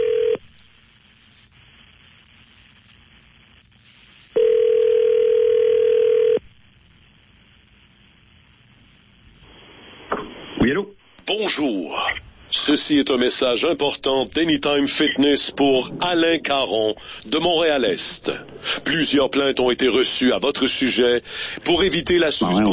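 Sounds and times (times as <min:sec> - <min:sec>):
steady single-pitch telephone line tone while a call is placed: 0:00.0 - 0:00.4, 0:04.4 - 0:06.4
quiet telephone line hiss: 0:00.0 - 0:22.7
speech: 0:11.6 - 0:22.7.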